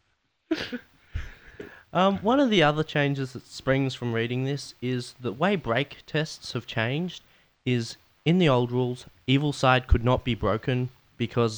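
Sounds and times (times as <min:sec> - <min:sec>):
speech: 0:00.5 - 0:00.9, 0:02.0 - 0:11.5
person coughing: 0:00.5 - 0:01.8.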